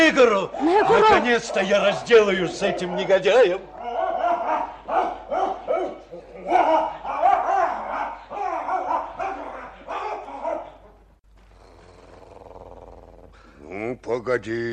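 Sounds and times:
speech: 0:00.1 - 0:03.8, 0:14.0 - 0:14.7
dog barking: 0:02.2 - 0:11.0.

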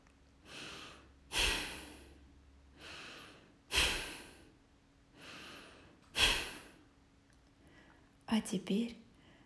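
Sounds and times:
light inhales and forceful exhales: 0:00.4 - 0:06.9
speech: 0:08.3 - 0:09.0.

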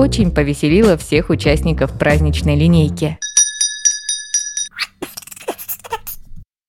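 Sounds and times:
speech: 0:00.0 - 0:03.2
hand bell rung vigorously by a squirrel: 0:03.2 - 0:04.8.

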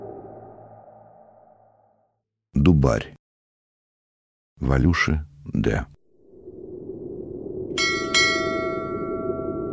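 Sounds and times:
speech: 0:02.6 - 0:03.2, 0:04.6 - 0:06.0
hanging piece of rail struck as a camp bell: 0:07.8 - 0:09.6.

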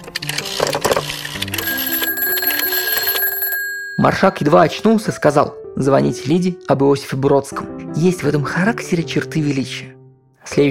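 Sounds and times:
telephone bell ringing with mechanical clatter: 0:01.6 - 0:04.9
speech: 0:04.0 - 0:10.7.

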